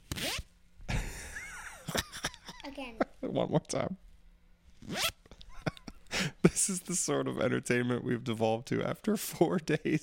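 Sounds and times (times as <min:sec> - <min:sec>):
jacket pocket zipper being zipped: 0:00.0 - 0:00.5, 0:04.8 - 0:05.2
speech: 0:02.8 - 0:04.1, 0:06.6 - 0:10.0.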